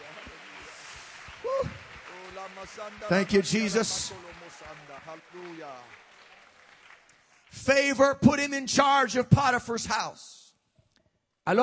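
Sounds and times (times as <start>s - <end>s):
audience clapping at a church service: 0.0s - 9.1s
speech: 2.4s - 6.1s, 7.5s - 10.4s.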